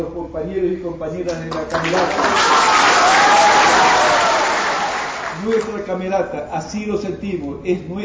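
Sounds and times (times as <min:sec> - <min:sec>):
speech: 0:00.0 - 0:04.3, 0:05.4 - 0:08.0
audience applause honoring a teacher and a chamber orchestra at an event: 0:01.5 - 0:05.7.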